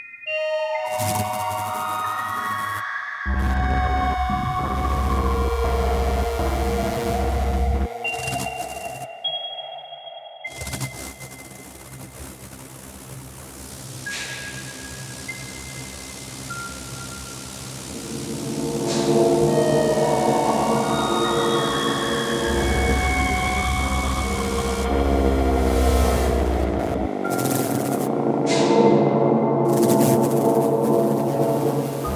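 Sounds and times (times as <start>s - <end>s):
ambient noise: 0.3s - 32.1s.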